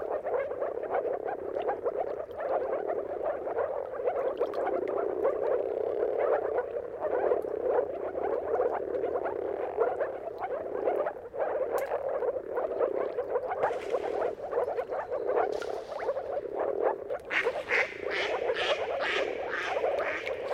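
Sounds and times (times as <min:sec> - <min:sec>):
chorus of moor frogs giving mating calls at sunrise: 0:00.0 - 0:20.5
faint higher sounds: 0:12.5 - 0:20.5.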